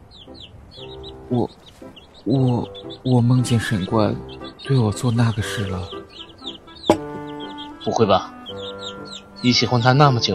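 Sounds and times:
soft faint clucking calls: 0.0 - 10.2
speech: 1.3 - 1.6, 2.2 - 6.0, 7.9 - 8.3, 9.4 - 10.3
loud raspy duck quack: 2.3 - 9.8.

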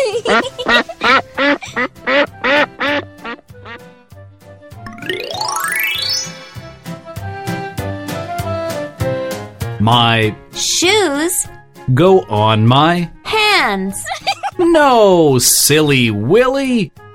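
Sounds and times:
laughter: 0.0 - 1.9, 14.1 - 14.6
speech: 0.3 - 0.6, 9.9 - 17.0
loud duck quacks: 0.3 - 3.8
bright plinking toy-like tones: 4.9 - 6.8
rising electronic sweep: 4.9 - 7.1.

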